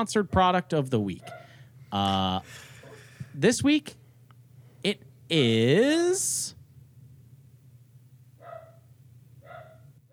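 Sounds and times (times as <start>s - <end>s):
speech: 0.0s - 2.7s, 3.4s - 4.0s, 4.8s - 6.6s
steady low hum: 0.0s - 10.1s
dog barking: 1.2s - 1.6s, 8.4s - 10.1s.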